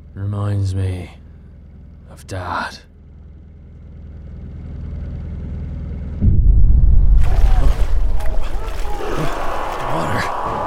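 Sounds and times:
speech: 0:00.2 - 0:01.2, 0:02.1 - 0:02.9
boat engine rumbling: 0:06.2 - 0:10.4
churning water: 0:07.2 - 0:10.6.

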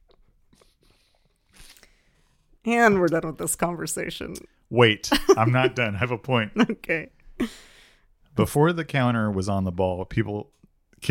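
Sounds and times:
wet slurping and mouth noises: 0:00.0 - 0:02.1
speech: 0:02.6 - 0:07.7, 0:08.4 - 0:11.1.

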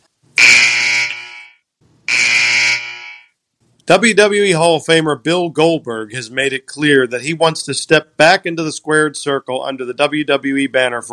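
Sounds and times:
loud harsh raspy buzzer blasts: 0:00.4 - 0:03.4
speech: 0:03.9 - 0:11.1.

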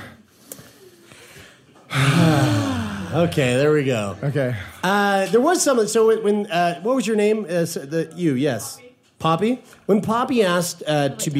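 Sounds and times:
group of people taking a deep breath together: 0:00.0 - 0:03.2
speech: 0:03.1 - 0:11.3.

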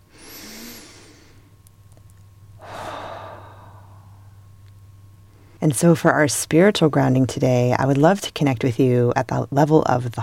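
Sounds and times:
deep breath in and out during a guided meditation: 0:00.0 - 0:01.5, 0:02.6 - 0:04.4
speech: 0:05.6 - 0:10.2.

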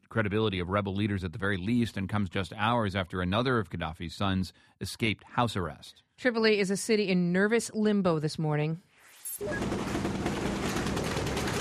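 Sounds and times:
speech: 0:00.1 - 0:10.0
heavy gunfire from fierce street gun battles in a Tripoli neighborhood: 0:09.4 - 0:11.5.

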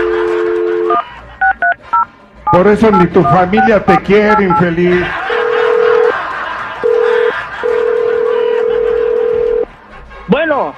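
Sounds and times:
laughter: 0:00.0 - 0:01.7, 0:03.2 - 0:10.0
telephone line tone as a number is dialed: 0:00.0 - 0:04.7, 0:06.8 - 0:09.7
speech: 0:02.5 - 0:05.2, 0:10.5 - 0:10.7.

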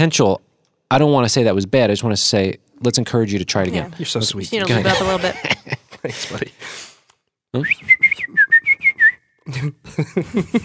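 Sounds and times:
speech: 0:00.0 - 0:06.9, 0:07.5 - 0:08.4, 0:09.5 - 0:10.6
laughter: 0:04.6 - 0:06.6, 0:09.5 - 0:10.6
person whistling short bright notes: 0:07.6 - 0:09.4.

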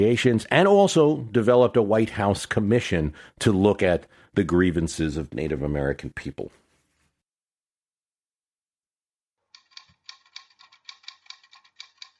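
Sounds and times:
speech: 0:00.0 - 0:06.6
typewriter typing: 0:09.6 - 0:12.1.

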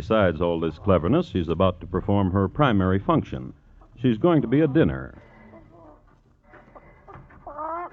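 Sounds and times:
speech: 0:00.0 - 0:05.3
fat hen clucking while carried in a woman's hand: 0:03.7 - 0:07.9
fat hen's drawn-out squawk with strong harmonic tones: 0:07.4 - 0:07.9.

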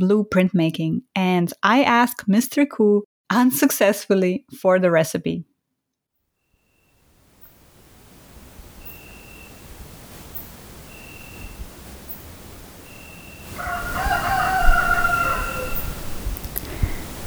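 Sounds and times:
speech: 0:00.0 - 0:05.5
steady outdoor noise: 0:06.9 - 0:17.2
faint chirps or beeps: 0:08.8 - 0:13.5
rooster crowing: 0:08.8 - 0:17.2.

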